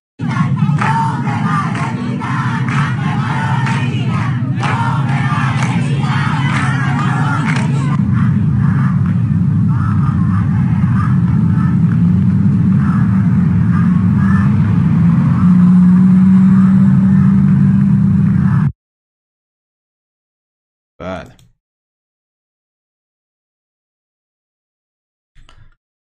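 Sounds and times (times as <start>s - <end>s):
faint indistinct voices: 0.2s - 14.6s
crowd of striking hospital staff and nurses chanting in unison: 0.2s - 17.5s
vehicle engine rumble travelling along a road: 0.3s - 18.7s.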